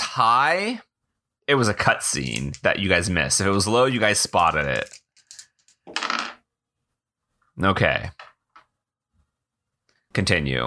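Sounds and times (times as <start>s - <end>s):
speech: 0.2s - 0.9s, 1.5s - 5.0s, 7.6s - 8.3s, 10.1s - 10.6s
dice rolling across a hard surface: 2.3s - 2.8s, 3.4s - 6.4s.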